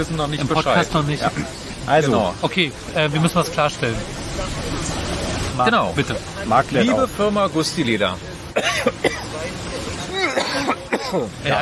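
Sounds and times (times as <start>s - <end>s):
speech: 0.0s - 4.7s, 5.6s - 9.7s, 10.5s - 11.5s
faint murmur: 0.0s - 11.5s
person clearing throat: 10.2s - 11.4s.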